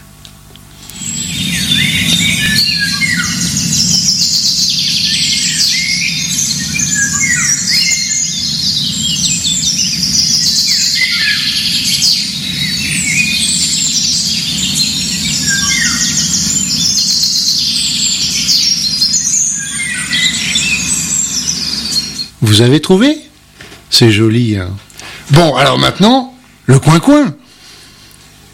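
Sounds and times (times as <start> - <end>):
several songbirds singing outdoors in nature: 0.8 - 23.2
speech: 22.6 - 23.2, 24.0 - 27.4.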